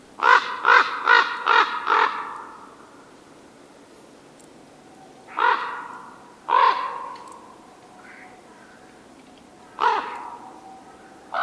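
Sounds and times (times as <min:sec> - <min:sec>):
raven croaking: 0:00.2 - 0:02.8, 0:05.3 - 0:11.4.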